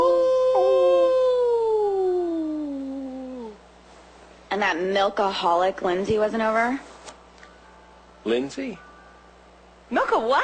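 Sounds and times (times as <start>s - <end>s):
person howling like a wolf: 0.0s - 3.6s
speech: 4.6s - 6.9s, 8.2s - 8.8s, 9.9s - 10.4s.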